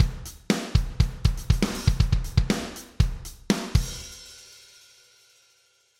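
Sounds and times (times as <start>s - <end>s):
drums processed with ReaComp: 0.0s - 5.9s.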